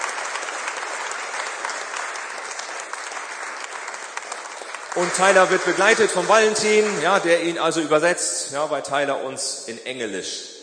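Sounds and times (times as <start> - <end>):
church congregation applauding a guest preacher: 0.0 - 7.7
speech: 5.0 - 10.5.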